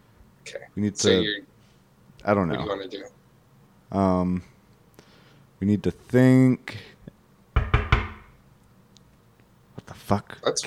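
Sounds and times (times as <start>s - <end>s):
speech: 0.5s - 1.5s, 2.2s - 3.2s, 3.9s - 4.5s, 5.6s - 6.9s, 9.9s - 10.6s
knocking on a door: 7.6s - 8.3s.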